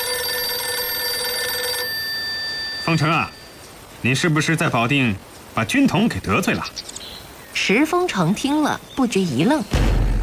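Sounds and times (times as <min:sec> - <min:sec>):
telephone ringing with an electronic trill: 0:00.0 - 0:04.2
speech: 0:02.9 - 0:03.4, 0:04.0 - 0:06.9, 0:07.6 - 0:09.9.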